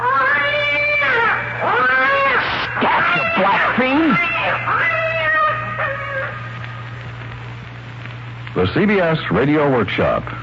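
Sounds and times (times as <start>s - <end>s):
cat yowling: 0.0s - 6.6s
faint low hum: 0.0s - 10.4s
speech: 8.6s - 10.4s.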